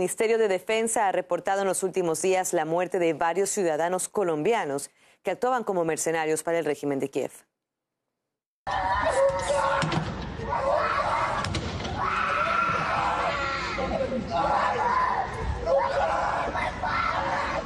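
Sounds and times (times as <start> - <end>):
speech: 0.0 - 7.5, 8.7 - 9.5
girl screaming during a forced detention scuffle: 8.7 - 11.4, 12.0 - 17.6
several people shouting in a scuffle: 8.7 - 17.6.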